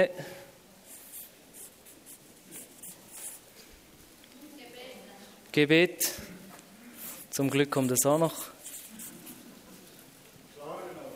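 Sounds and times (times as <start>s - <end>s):
speech: 0.0s - 0.4s, 5.5s - 6.3s, 7.4s - 8.6s
pen scratching on paper: 0.9s - 3.5s, 7.1s - 9.5s.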